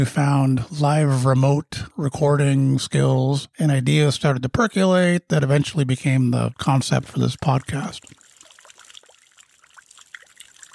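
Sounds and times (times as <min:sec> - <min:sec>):
speech: 0:00.0 - 0:08.2
rainwater dripping from a roof into a bucket: 0:07.4 - 0:10.7.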